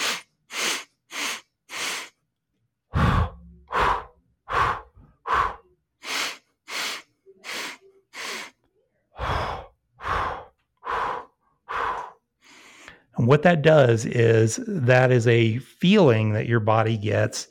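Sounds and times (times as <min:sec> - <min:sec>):
heavy rhythmic breathing from a breathing exercise, nasal breaths in and mouth breaths out: 0:00.0 - 0:02.3, 0:02.9 - 0:13.2
speech: 0:13.2 - 0:17.4.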